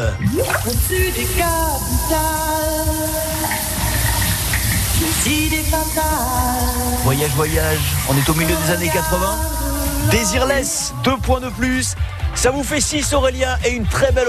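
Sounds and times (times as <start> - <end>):
speech: 0.0 - 3.8, 5.0 - 14.2
shower running: 0.0 - 12.0
person singing wordless notes: 0.0 - 13.2.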